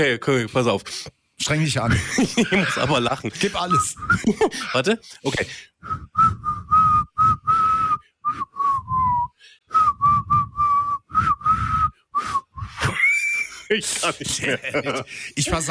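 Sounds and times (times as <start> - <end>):
speech: 0.0 - 6.3, 13.7 - 15.6
laughter: 1.9 - 5.0, 12.8 - 15.6
person whistling a Schlager pop tune: 3.7 - 4.2, 5.8 - 13.0.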